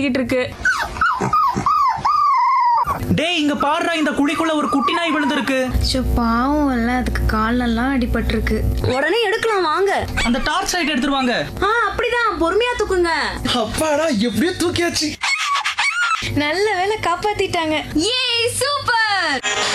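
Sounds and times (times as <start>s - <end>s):
speech: 0.0s - 1.8s, 3.0s - 15.2s, 16.3s - 19.7s
dog whining and crying: 0.6s - 5.8s, 10.1s - 11.6s, 15.2s - 16.3s.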